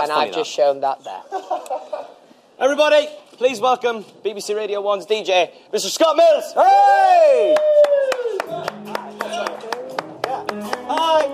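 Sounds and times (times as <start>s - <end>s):
speech: 0.0s - 1.8s, 2.6s - 8.7s
scattered claps from a few people among a large crowd: 7.4s - 11.3s.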